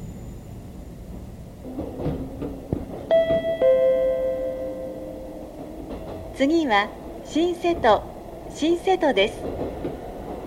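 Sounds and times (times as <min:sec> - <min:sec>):
steady hum: 0:00.0 - 0:10.4
train doors rumbling and thudding: 0:01.0 - 0:10.4
two-tone electronic train door chime: 0:03.1 - 0:05.2
speech: 0:06.4 - 0:10.0.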